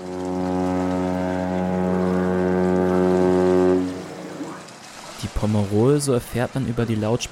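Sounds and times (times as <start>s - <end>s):
deep horn of a red 120-metre tanker on the Elbe: 0.0s - 5.1s
speech: 5.4s - 7.2s.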